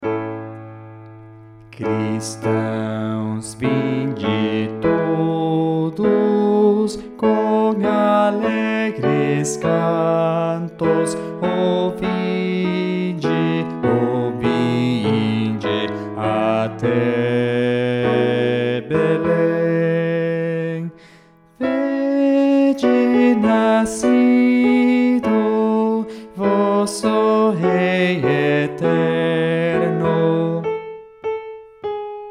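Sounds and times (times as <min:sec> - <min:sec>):
bass playing a hymn: 0:01.7 - 0:30.7.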